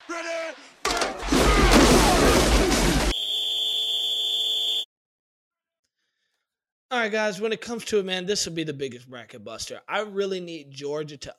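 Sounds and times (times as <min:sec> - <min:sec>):
noisy crashing burst: 0:00.8 - 0:03.2
high-pitched whistle blast signalling the start: 0:03.1 - 0:04.9
speech: 0:07.0 - 0:11.3.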